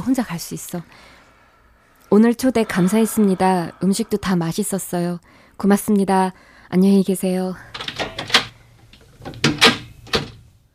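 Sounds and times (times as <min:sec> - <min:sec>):
speech: 0:00.0 - 0:01.2, 0:02.1 - 0:07.8
door clattering knocks: 0:07.7 - 0:10.5
heavier door thuds: 0:09.2 - 0:10.5.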